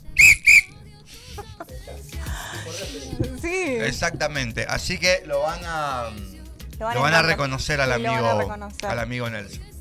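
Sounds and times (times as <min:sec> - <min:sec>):
shrill hand whistle blasts: 0:00.0 - 0:00.8
laughter: 0:01.1 - 0:04.4, 0:07.8 - 0:08.6
speech: 0:02.8 - 0:09.7.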